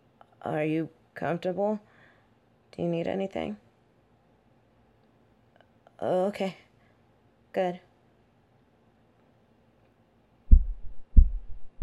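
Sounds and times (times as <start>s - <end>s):
speech: 0.4s - 1.9s, 2.7s - 3.6s, 6.0s - 6.6s, 7.6s - 7.9s
human heartbeat thumping: 10.5s - 11.8s.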